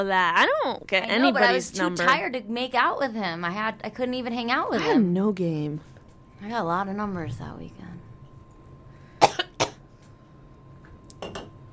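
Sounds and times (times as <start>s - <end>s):
speech: 0.0s - 8.1s
person coughing: 9.2s - 9.8s.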